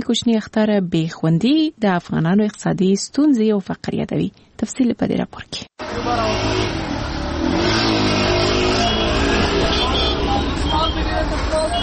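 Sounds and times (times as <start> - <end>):
speech: 0.0 - 6.8
car engine revving and accelerating: 5.8 - 11.6
city car traffic rumbling: 5.8 - 11.8.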